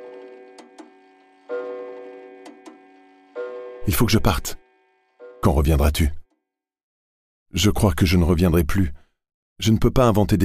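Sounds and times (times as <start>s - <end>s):
clock ticking: 0.0s - 3.6s
clock chiming the hour: 0.0s - 6.2s
speech: 3.9s - 4.6s, 5.4s - 6.2s, 7.5s - 9.0s, 9.6s - 10.4s.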